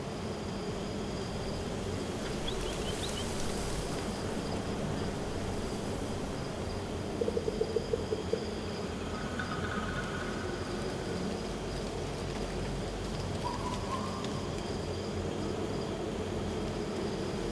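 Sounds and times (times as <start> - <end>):
forest ambience: 0.1 - 17.4.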